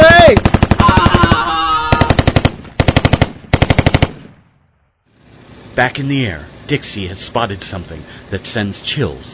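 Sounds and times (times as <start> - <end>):
rapid machine gun fire from a hand-mounted gun: 0.1 - 4.4
speech: 5.8 - 9.3.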